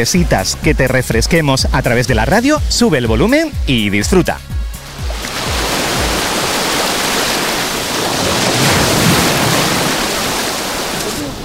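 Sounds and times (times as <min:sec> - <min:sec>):
speech: 0:00.0 - 0:04.5
gentle sea waves washing onto a beach: 0:04.8 - 0:11.4.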